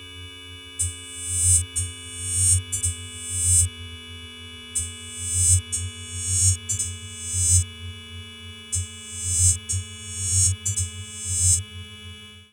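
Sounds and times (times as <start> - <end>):
subharmonic resonance frequency tone: 0.8 - 3.7, 4.8 - 8.1, 8.7 - 11.7.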